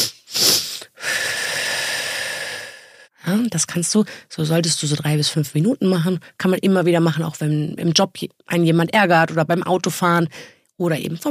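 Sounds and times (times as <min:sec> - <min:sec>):
long airy exhale in a breathing exercise: 0:00.0 - 0:03.1
quick breaths drawn in through the nose in a breathing exercise: 0:00.0 - 0:03.1
speech: 0:03.3 - 0:11.2.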